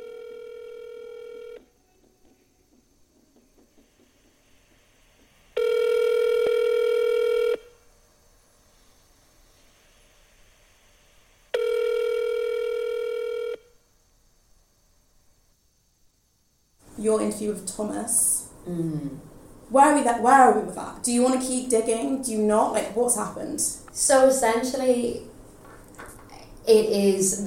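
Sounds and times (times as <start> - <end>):
telephone line tone during dialing: 0.0 - 1.7, 5.6 - 7.8, 11.6 - 13.7
speech: 17.0 - 25.3, 26.7 - 27.4.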